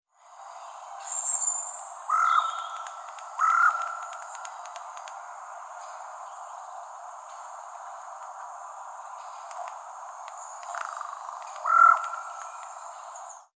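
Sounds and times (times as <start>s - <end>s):
faint background hiss: 0.1s - 13.5s
Corvus corone carrion crow giving short hoarse harsh calls: 2.1s - 2.8s, 3.4s - 4.0s, 10.8s - 12.3s.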